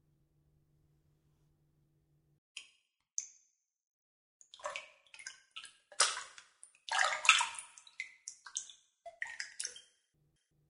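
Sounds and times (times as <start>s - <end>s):
shower water rinsing with splashing and spattering: 4.6s - 9.8s.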